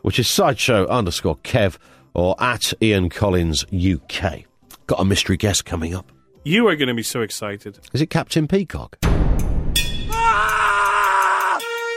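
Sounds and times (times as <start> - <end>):
speech: 0.0 - 9.6
loud shrill scream: 10.1 - 11.9.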